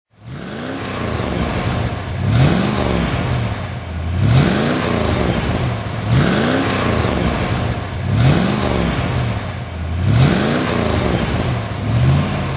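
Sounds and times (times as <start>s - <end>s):
Facel Vega Facel II car engine throttle: 0.1s - 12.5s.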